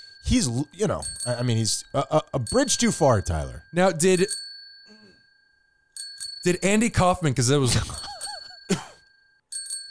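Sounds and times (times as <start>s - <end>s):
bicycle bell ringing: 0.0s - 9.9s
speech: 0.3s - 4.4s, 6.4s - 8.0s.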